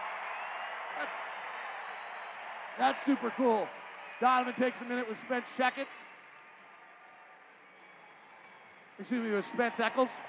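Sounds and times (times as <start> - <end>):
big arena crowd roaring and applauding: 0.0 - 10.2
speech: 1.0 - 1.3, 2.8 - 6.1, 9.0 - 10.2.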